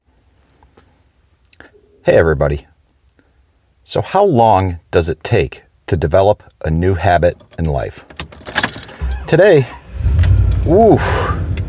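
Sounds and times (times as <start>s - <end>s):
speech: 1.6s - 2.7s, 3.9s - 8.3s, 9.3s - 9.8s, 10.6s - 11.4s
old truck engine cranking slowly on a cold November morning: 7.4s - 11.6s.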